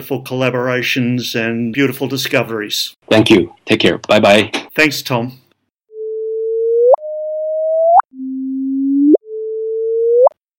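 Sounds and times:
speech: 0.0 - 5.4
gravitational wave chirp sonification electronic tones swooping upward: 6.0 - 10.4.

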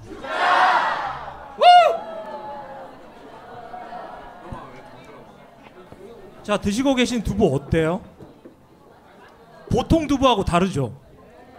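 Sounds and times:
audience cheering group shout at a public broadcast toast: 0.0 - 5.1
voices chattering: 0.0 - 11.5
speech: 6.5 - 8.1, 9.8 - 11.0.

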